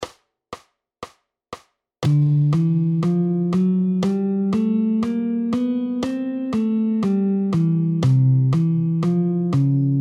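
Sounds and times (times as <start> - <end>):
walking bassline: 2.0 - 10.0.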